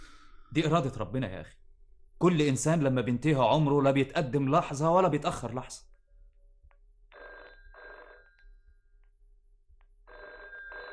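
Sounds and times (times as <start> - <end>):
speech: 0.5 - 1.6, 2.2 - 5.9
telephone bell ringing: 7.1 - 8.9, 10.0 - 10.9.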